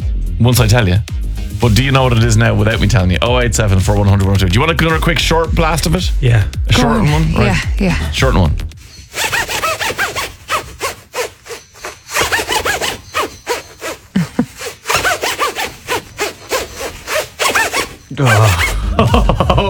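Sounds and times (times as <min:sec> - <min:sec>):
speech: 0:00.4 - 0:09.6, 0:18.2 - 0:19.4
jacket zipper yanked up and down: 0:01.4 - 0:03.0, 0:06.7 - 0:19.2
laughter: 0:14.1 - 0:14.6, 0:18.1 - 0:19.6.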